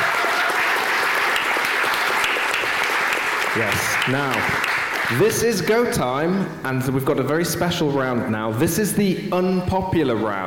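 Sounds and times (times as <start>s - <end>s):
crowd applauding loudly: 0.0s - 5.6s
speech: 3.6s - 10.4s.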